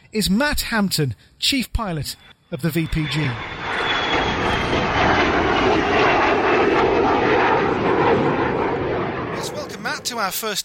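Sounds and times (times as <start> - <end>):
speech: 0.1 - 8.3, 9.4 - 10.6
de Havilland Vampire T11 jet trainer engine roar: 2.1 - 10.6.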